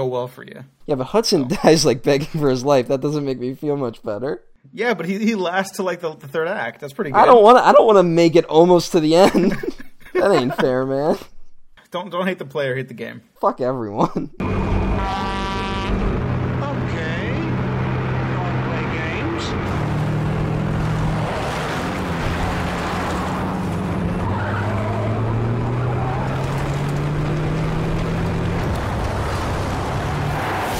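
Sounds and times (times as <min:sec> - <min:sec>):
speech: 0:00.0 - 0:11.3, 0:11.9 - 0:14.6
laughter: 0:09.1 - 0:11.2
harsh grinding and skidding noise: 0:14.4 - 0:30.7
heavy truck engine roaring: 0:14.4 - 0:30.7.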